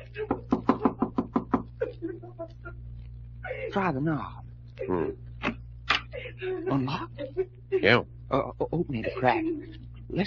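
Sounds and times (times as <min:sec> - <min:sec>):
low steady hum: 0:00.0 - 0:10.2
knocking on a wooden door: 0:00.3 - 0:01.7
speech: 0:03.7 - 0:05.2, 0:06.4 - 0:10.2.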